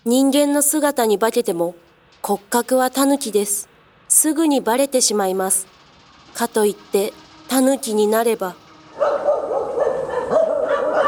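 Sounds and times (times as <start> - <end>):
speech: 0.0 - 9.3
hunting dog barking with yelping barks: 9.0 - 11.0.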